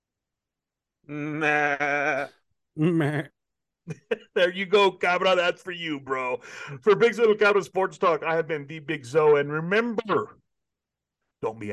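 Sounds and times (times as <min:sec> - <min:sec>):
speech: 0:01.1 - 0:01.8, 0:02.8 - 0:10.4, 0:11.4 - 0:11.7
person imitating a goat bleat: 0:01.1 - 0:03.3.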